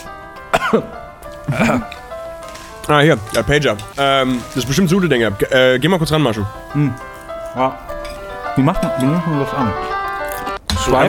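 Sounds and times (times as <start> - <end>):
person coughing with throaty voiced coughs: 0.5 - 2.0
speech: 0.7 - 2.0, 2.9 - 8.0, 8.6 - 9.9, 10.8 - 11.0.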